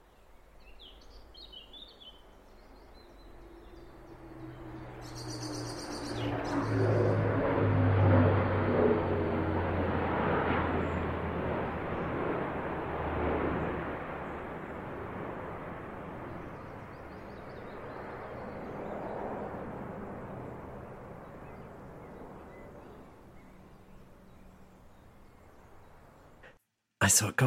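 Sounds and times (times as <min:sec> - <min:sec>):
low-flying military plane roaring overhead: 0:02.4 - 0:26.5
wood warbler trilling in woodland: 0:05.0 - 0:07.2
speech: 0:27.1 - 0:27.4.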